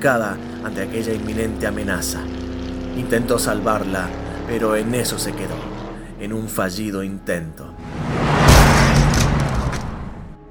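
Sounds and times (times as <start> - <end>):
speech: 0.0 - 2.4, 3.0 - 8.4
car rumbling and scraping as it drives over something: 0.0 - 6.5, 7.8 - 10.4
car engine roaring: 0.0 - 10.4
heavy thud of a car striking a person: 7.9 - 10.3.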